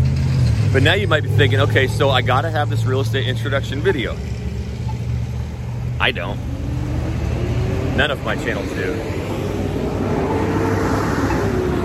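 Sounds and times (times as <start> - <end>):
loud heavy truck passing by: 0.0 - 11.8
speech: 0.7 - 4.4, 6.0 - 6.5, 8.0 - 9.2.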